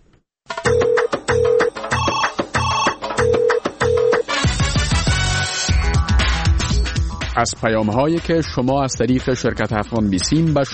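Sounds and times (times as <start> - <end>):
telephone ringing in electronic bursts: 0.5 - 4.3
music: 0.5 - 10.7
speech: 7.4 - 10.7.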